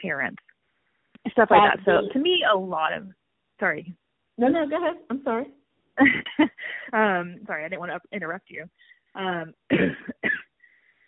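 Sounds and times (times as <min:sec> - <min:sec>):
speech: 0:00.0 - 0:00.5, 0:01.2 - 0:10.4
throaty vocal sound: 0:04.4 - 0:05.5
person coughing: 0:09.7 - 0:10.5.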